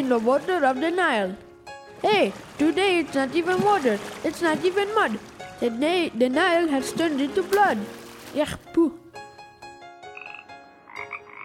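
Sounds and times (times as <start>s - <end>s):
speech: 0.0s - 9.0s
frogs croaking: 10.1s - 11.4s.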